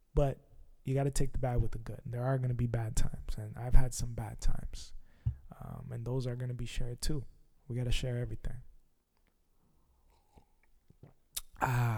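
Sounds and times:
speech: 0:00.2 - 0:05.0, 0:05.6 - 0:08.7, 0:11.6 - 0:11.9
loud satisfied voiced exhale: 0:11.4 - 0:11.9
soft mouth sounds: 0:11.4 - 0:11.9.

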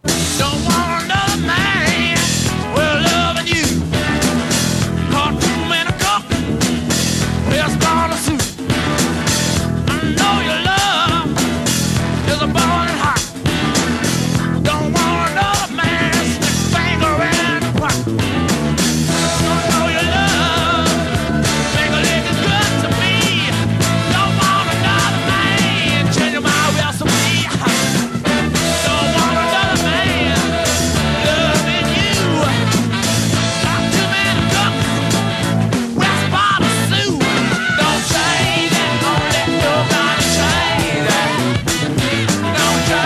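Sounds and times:
loud dense rock cover song: 0:00.0 - 0:43.0.

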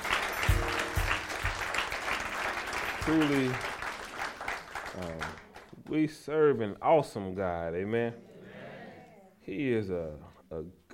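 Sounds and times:
heavier rhythmic thumps: 0:00.0 - 0:03.4
audience hand clap applause: 0:00.0 - 0:05.9
speech: 0:03.1 - 0:03.7, 0:05.0 - 0:08.3, 0:09.5 - 0:10.8.

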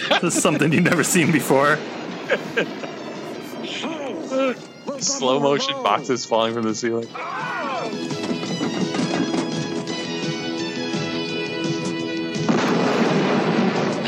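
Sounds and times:
noisy blast: 0:00.0 - 0:05.3, 0:08.0 - 0:14.0
laughter: 0:00.0 - 0:06.3, 0:07.2 - 0:08.0
speech: 0:00.2 - 0:02.9, 0:03.6 - 0:08.0
explosive booms: 0:00.3 - 0:05.0, 0:08.0 - 0:11.2, 0:12.3 - 0:14.0.

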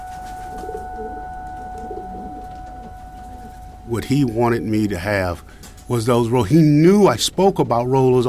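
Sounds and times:
pigeons cooing: 0:00.0 - 0:06.1
speech: 0:03.9 - 0:08.2.

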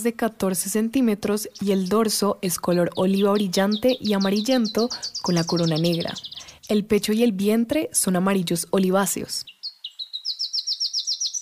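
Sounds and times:
speech: 0:00.0 - 0:09.5
black-crested warbler singing a rising trill: 0:00.7 - 0:07.5, 0:09.2 - 0:11.4.

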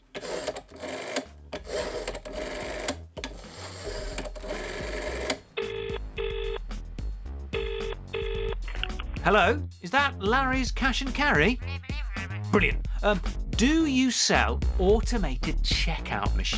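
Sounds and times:
clattering mechanical noise: 0:00.0 - 0:05.6
telephone number being dialed with electronic tone beeps: 0:05.6 - 0:06.6, 0:07.6 - 0:08.6
speech: 0:09.2 - 0:11.7, 0:12.5 - 0:16.5.

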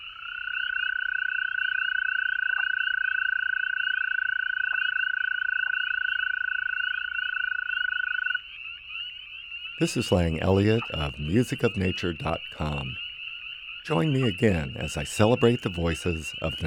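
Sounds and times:
chorus of toads trilling: 0:00.0 - 0:16.6
laughter: 0:09.8 - 0:13.0, 0:13.9 - 0:16.6
speech: 0:09.8 - 0:13.0, 0:13.9 - 0:16.6.

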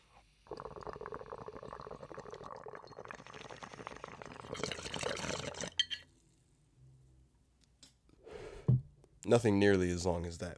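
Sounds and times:
water bubbling in a glass bong being hit: 0:00.5 - 0:05.8
speech: 0:09.3 - 0:10.5.

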